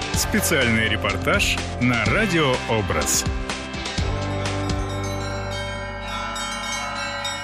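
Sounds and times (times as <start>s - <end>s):
speech: 0.2s - 3.4s
church bells pealing at a bell-ringers' festival in Russia: 4.0s - 7.4s.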